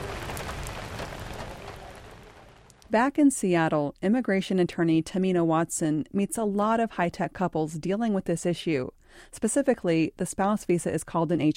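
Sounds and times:
monsoon rain pattering on surfaces: 0.0s - 3.0s
speech: 2.9s - 11.5s.

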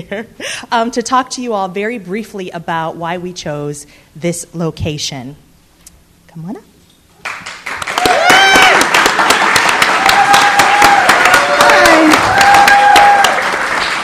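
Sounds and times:
speech: 0.0s - 5.4s, 6.3s - 6.7s
group of friends clapping at an event: 7.2s - 14.0s
people whooping and calling out over the applause: 8.0s - 8.9s, 10.0s - 13.4s.

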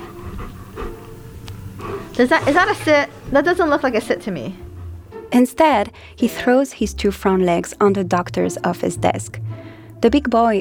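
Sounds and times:
dog panting: 0.0s - 5.1s
speech: 2.2s - 4.6s, 5.3s - 10.5s.

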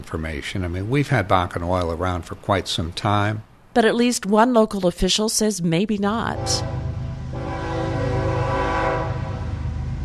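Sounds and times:
speech: 0.0s - 6.8s
train horn sounding a sustained chord: 6.3s - 9.8s.

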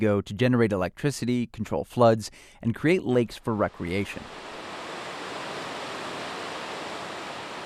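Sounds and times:
speech: 0.0s - 4.6s
water rushing over a river dam: 3.7s - 7.6s.

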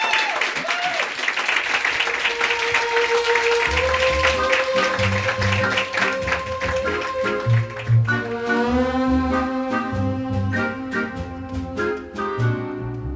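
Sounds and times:
live audience clapping: 0.0s - 9.0s
band playing: 2.1s - 13.1s.

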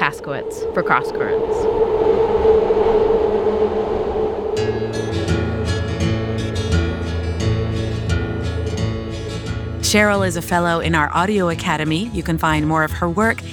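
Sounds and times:
train rumbling along the rails: 0.0s - 8.8s
speech: 0.1s - 5.2s, 9.9s - 13.5s.

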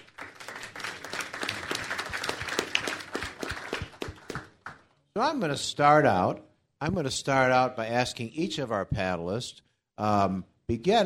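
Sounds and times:
audience applauding at an evening public event: 0.0s - 4.9s
speech: 5.2s - 11.0s.

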